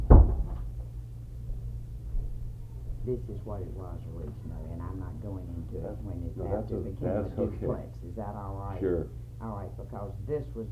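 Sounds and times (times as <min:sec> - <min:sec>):
door shutting thud: 0:00.0 - 0:00.8
low steady hum of room or traffic noise: 0:00.0 - 0:10.7
speech: 0:03.1 - 0:10.7.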